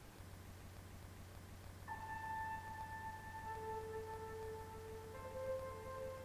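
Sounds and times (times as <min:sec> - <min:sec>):
faint hiss: 0:00.0 - 0:06.2
low hum: 0:00.0 - 0:06.2
soft sustained synth-like background music: 0:01.8 - 0:06.2.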